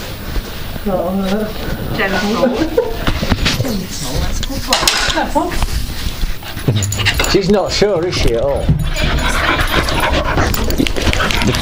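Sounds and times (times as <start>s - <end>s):
speech: 0.8s - 5.8s, 6.6s - 11.6s
puppy panting while playing with a person: 5.2s - 11.6s.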